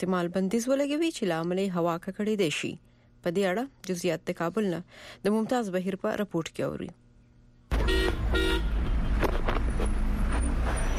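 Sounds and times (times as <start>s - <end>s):
speech: 0.0s - 7.0s
car horn honks in central Kabul traffic: 7.7s - 9.1s
busy street traffic engine and road rumble in central Kabul: 7.7s - 10.9s.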